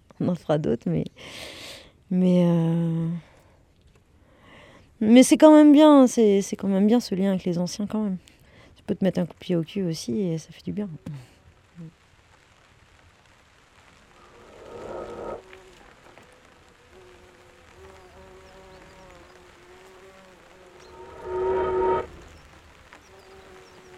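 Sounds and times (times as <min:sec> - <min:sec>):
speech: 0:00.2 - 0:03.3, 0:05.0 - 0:08.3, 0:08.9 - 0:12.0
insects buzzing and droning outdoors: 0:14.1 - 0:23.9.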